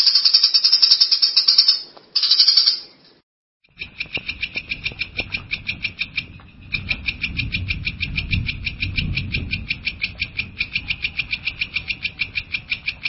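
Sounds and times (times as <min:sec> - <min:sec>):
long-tailed shrike giving sharp chattering notes: 0:00.0 - 0:02.9, 0:03.6 - 0:13.0
rumbling low background noise: 0:03.7 - 0:13.0.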